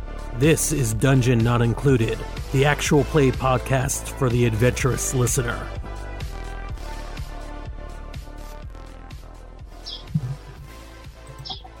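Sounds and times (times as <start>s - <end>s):
speech: 0.4s - 5.8s
steady rhythmic music with a regular beat: 5.8s - 11.7s
faint high bird chirps: 9.8s - 10.6s, 11.4s - 11.7s.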